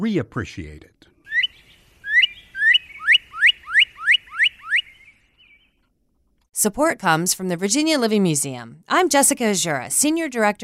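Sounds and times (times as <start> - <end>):
speech: 0.0 - 0.9, 6.6 - 10.6
Northern Cardinal song: 1.3 - 5.8.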